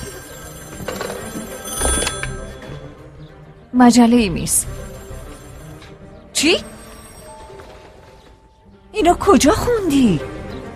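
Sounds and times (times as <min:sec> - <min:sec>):
telephone ringing with electronic trills: 0:00.0 - 0:03.2, 0:04.1 - 0:08.8
speech: 0:03.8 - 0:04.8, 0:06.4 - 0:06.7, 0:09.0 - 0:10.3.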